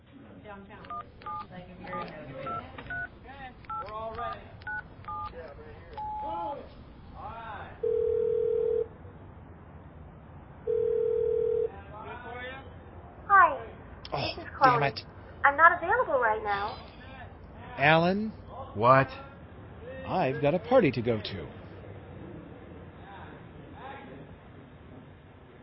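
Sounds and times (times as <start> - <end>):
speech: 0.5 - 2.9, 14.6 - 16.9, 17.8 - 19.2, 20.1 - 21.6
long steady phone ringing tone: 0.9 - 3.1, 6.0 - 6.4, 7.8 - 8.9, 10.7 - 11.7
phone keypad beeps: 0.9 - 3.1, 3.7 - 5.3, 6.0 - 6.3.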